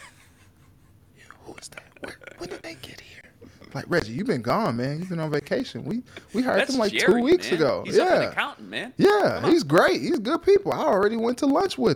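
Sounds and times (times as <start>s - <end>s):
person whispering: 1.2s - 3.4s
speech: 3.8s - 11.9s.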